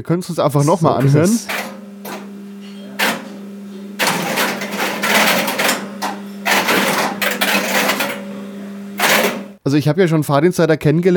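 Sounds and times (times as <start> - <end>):
speech: 0.0 - 1.6, 9.7 - 11.1
steady low electrical hum: 0.3 - 9.6
many relays switching in quick succession: 0.9 - 3.4, 4.0 - 8.3, 8.9 - 9.6.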